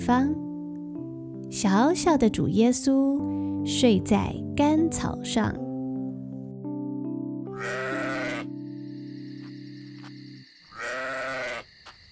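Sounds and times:
speech: 0.0s - 0.4s, 1.5s - 5.6s
soft sustained musical backdrop: 0.0s - 10.4s
sheep bleating: 7.6s - 8.5s, 10.7s - 11.6s.

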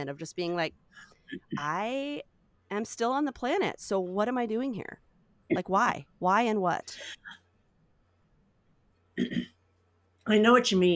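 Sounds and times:
speech: 0.0s - 7.4s, 9.2s - 9.5s, 10.3s - 10.9s
person with a sinus issue clearing throat: 9.2s - 9.6s.

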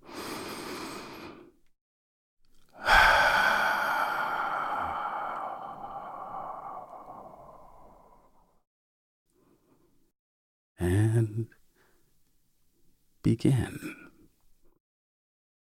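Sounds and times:
deep breath: 0.0s - 1.6s, 2.7s - 8.6s, 11.7s - 12.1s
speech: 13.3s - 14.0s.

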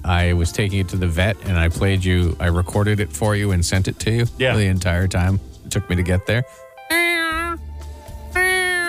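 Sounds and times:
speech: 0.1s - 7.0s
person imitating a screaming cat: 6.9s - 7.6s, 8.4s - 8.8s.

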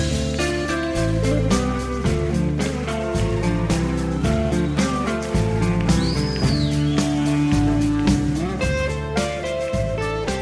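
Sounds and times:
bright high guitar line at a live rock concert: 0.0s - 10.3s
live rock band with deep bass and drum hits: 0.0s - 10.3s.

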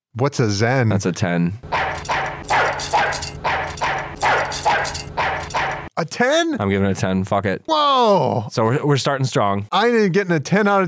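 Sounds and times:
speech: 0.2s - 2.1s, 4.2s - 10.8s
dog barking: 1.7s - 5.9s.

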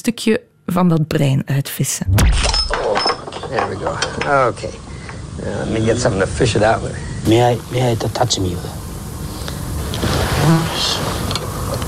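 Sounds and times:
speech: 0.0s - 2.8s, 3.5s - 8.8s, 10.0s - 11.2s
fly buzzing past: 9.4s - 11.3s.

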